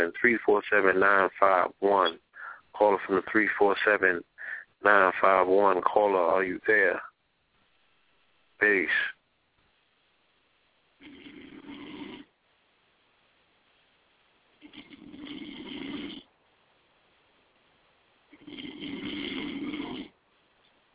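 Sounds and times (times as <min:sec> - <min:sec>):
speech: 0:00.0 - 0:07.1, 0:08.6 - 0:09.2
snoring over a telephone line: 0:11.0 - 0:12.3, 0:14.6 - 0:16.3, 0:18.3 - 0:20.2.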